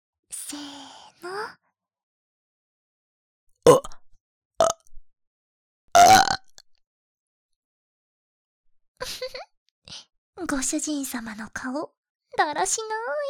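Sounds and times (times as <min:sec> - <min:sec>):
speech: 0:00.5 - 0:01.6, 0:10.4 - 0:13.2
loud burps: 0:03.7 - 0:04.0, 0:06.0 - 0:06.6.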